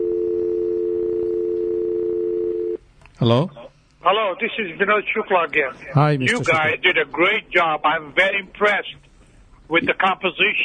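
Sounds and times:
telephone dial tone after dropped incoming call: 0.0s - 2.8s
speech: 3.2s - 9.1s, 9.7s - 10.6s.

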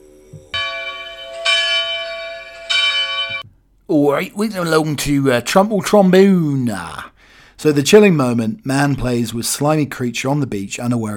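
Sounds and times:
large bells ringing: 0.6s - 3.4s
speech: 3.9s - 11.1s.

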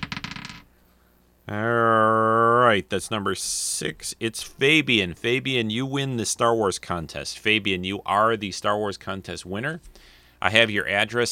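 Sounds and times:
small die rattling across a hard tabletop: 0.0s - 0.7s
speech: 1.5s - 1.9s, 2.7s - 11.3s.

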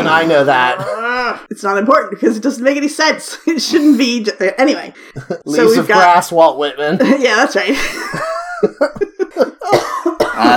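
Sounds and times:
speech: 0.1s - 9.5s
person coughing harsh and throaty: 0.6s - 1.4s, 9.6s - 10.5s
laughter: 6.8s - 10.5s.

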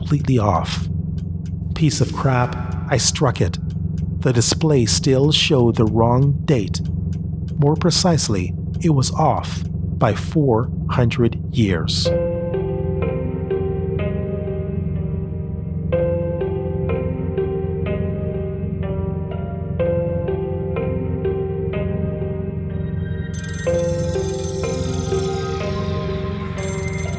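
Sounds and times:
constant low hum: 0.0s - 27.1s
speech: 0.1s - 0.9s, 1.8s - 7.0s, 7.6s - 12.2s
old-fashioned rotary wall telephone ringing by an observation deck: 23.4s - 27.1s.

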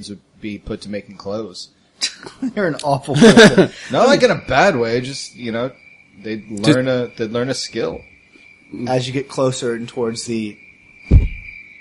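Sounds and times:
speech: 0.0s - 8.1s, 8.7s - 11.2s
crickets chirping: 0.0s - 11.8s
laughter: 2.0s - 4.8s
low thump: 11.1s - 11.6s.

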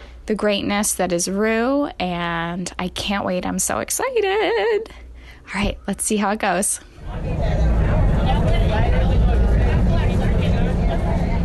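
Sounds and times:
speech: 0.3s - 7.7s
indistinct passenger chatter: 6.8s - 11.4s
city bus engine rumble: 6.9s - 11.4s
road drone inside a moving city bus: 7.0s - 11.4s.

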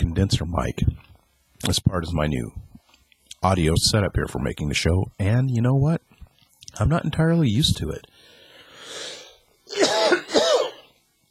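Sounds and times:
speech: 0.2s - 2.6s, 3.4s - 6.1s, 6.8s - 8.1s
breathy intake: 8.2s - 10.7s
harsh coughs: 9.7s - 10.9s.

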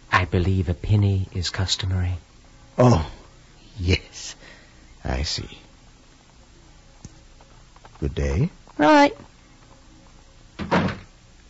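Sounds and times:
speech: 0.3s - 3.2s, 3.8s - 5.6s, 8.0s - 9.3s
door swinging shut with a solid thud: 10.6s - 11.1s.

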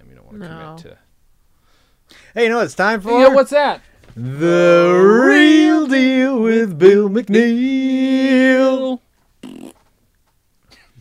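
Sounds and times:
speech: 0.2s - 1.1s, 2.1s - 9.0s
fart sound effect: 9.4s - 9.9s.

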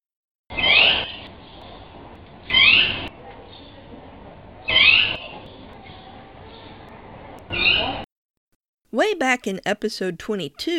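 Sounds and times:
jaguarundi bright bird-like chirping calls: 0.5s - 1.7s, 2.4s - 3.8s, 4.6s - 6.7s, 7.5s - 8.0s
speech: 9.0s - 10.7s.

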